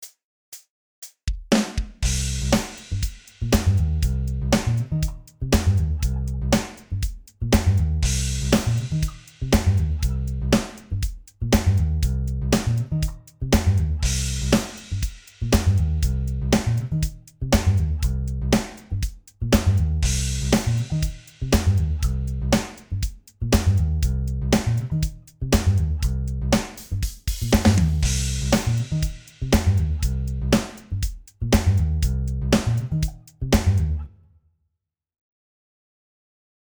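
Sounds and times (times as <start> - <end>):
drums and bass: 1.3 - 34.1.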